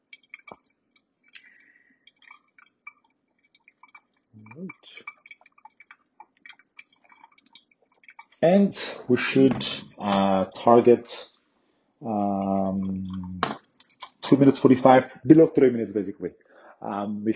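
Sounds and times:
hot water poured over coffee grounds in a flatbed brewer: 0.0s - 9.1s, 12.0s - 13.4s
coffee dripping through filter: 0.0s - 10.3s, 12.0s - 15.0s
speech: 4.5s - 5.2s, 8.4s - 11.3s, 14.4s - 17.3s.

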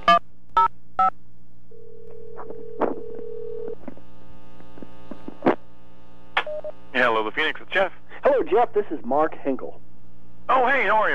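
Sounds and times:
steady low hum: 0.0s - 11.1s
longer held tone: 1.7s - 3.8s
speech: 8.5s - 9.9s, 10.5s - 11.1s.

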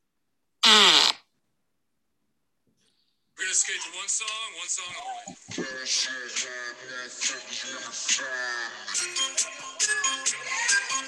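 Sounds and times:
buzzy fart: 0.6s - 1.2s
speech: 3.5s - 11.0s.

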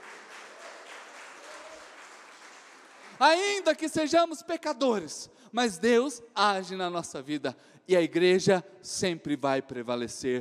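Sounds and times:
audience applauding: 0.0s - 3.7s
speech: 3.2s - 10.3s.

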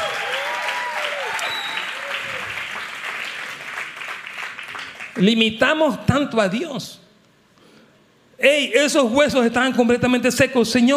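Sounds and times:
audience cheering and whooping in praise of God: 0.0s - 3.0s
audience applauding in praise of God: 0.0s - 5.3s
speech: 5.2s - 7.0s, 8.4s - 10.9s.

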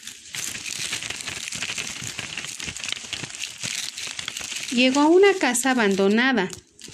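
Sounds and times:
footsteps crunching dry leaves on a trail: 0.0s - 6.9s
speech: 4.7s - 6.6s.

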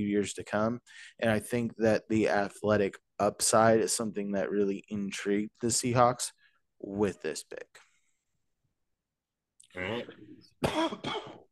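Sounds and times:
speech: 0.0s - 7.8s, 9.8s - 11.4s
person coughing: 9.9s - 11.4s.

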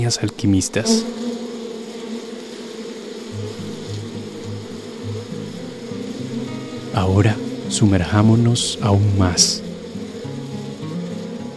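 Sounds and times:
speech: 0.0s - 1.4s, 7.0s - 9.7s
many bees buzzing together: 0.0s - 11.5s
low droning layer: 3.2s - 11.5s.

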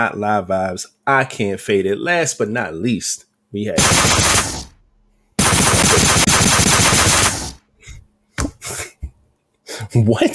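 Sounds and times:
speech: 0.0s - 4.6s, 10.0s - 10.3s
assault rifle automatic fire: 3.8s - 4.8s, 5.4s - 7.6s
assault rifle short bursts: 5.4s - 7.6s.

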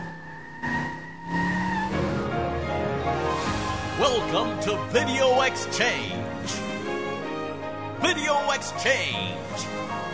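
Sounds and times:
car tires squealing and skidding in the rain: 0.0s - 7.1s
car engine revving and pulling away in the rain: 0.0s - 7.5s
speech: 4.0s - 6.7s, 8.0s - 10.1s.

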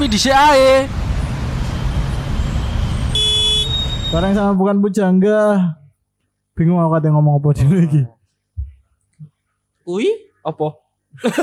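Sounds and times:
speech: 0.0s - 1.0s, 4.1s - 5.8s, 6.6s - 8.2s, 9.9s - 11.4s
traffic rumble of idling vehicles on a jammed road: 0.0s - 4.6s
car horn tooting: 1.8s - 4.6s.

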